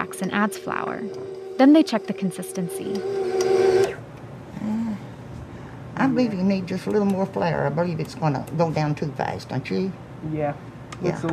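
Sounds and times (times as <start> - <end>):
electric mixer humming while mixing batter in a kitchen: 0.0 - 4.1
speech: 0.1 - 4.0, 6.0 - 11.3.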